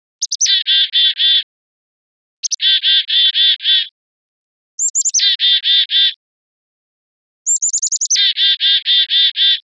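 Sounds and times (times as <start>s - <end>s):
black-capped chickadee: 0.2s - 1.5s, 2.4s - 3.9s, 4.8s - 6.2s, 7.5s - 9.6s.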